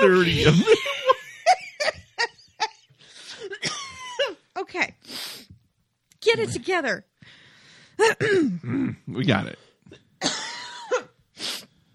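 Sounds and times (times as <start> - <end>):
speech: 0.0 - 0.9, 6.4 - 7.1, 8.0 - 9.6
person coughing with raspy hacking cough: 3.5 - 4.4, 10.2 - 11.2.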